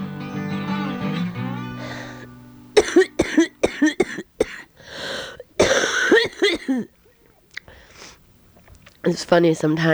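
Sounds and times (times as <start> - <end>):
strained wheezy drawn-out breath: 1.5 - 3.6, 4.4 - 6.3, 7.7 - 8.2
hard coughing fit with raspy gasps: 2.8 - 7.0
speech: 9.1 - 9.9.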